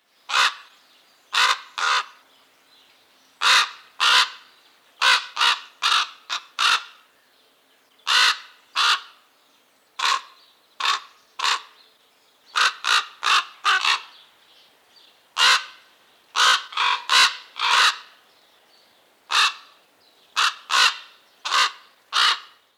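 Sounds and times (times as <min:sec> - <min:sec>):
Corvus corax calls: 0:00.3 - 0:00.7, 0:01.3 - 0:02.2, 0:03.4 - 0:07.1, 0:08.0 - 0:09.3, 0:10.0 - 0:11.8, 0:12.5 - 0:14.2, 0:15.4 - 0:18.2, 0:19.3 - 0:22.7.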